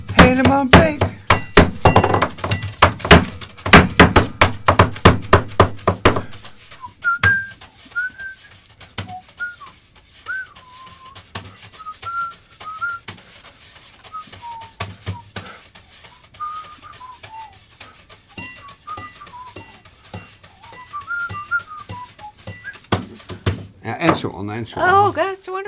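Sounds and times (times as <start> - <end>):
drummer's hands drumming on a studio tabletop: 0.0 - 25.2
knocks and clinks on a glass: 0.1 - 6.4, 18.4 - 22.7
speech: 0.3 - 1.1, 24.6 - 25.6
person whistling a wavering tune: 6.7 - 13.1, 14.0 - 15.3, 16.1 - 17.6, 18.4 - 19.8, 20.6 - 22.9.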